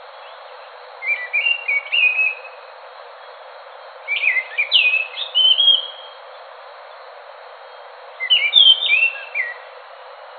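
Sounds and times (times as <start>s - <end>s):
steady hiss: 0.0s - 10.3s
scaly thrush whistled song: 1.0s - 2.6s, 4.0s - 6.2s, 8.2s - 9.7s.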